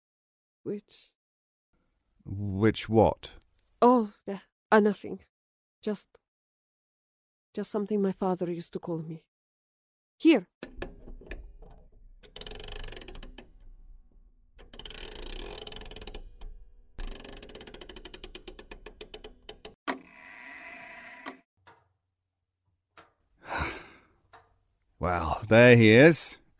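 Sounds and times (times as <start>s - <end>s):
speech: 0.6s - 1.2s, 2.3s - 6.2s, 7.6s - 9.3s, 10.2s - 10.7s, 25.0s - 26.4s
clock mechanism clicking and ratcheting: 10.6s - 20.0s
gear-like whirring: 10.7s - 19.8s
rapid ticks: 12.1s - 19.8s
soft breathy sigh: 23.4s - 24.2s.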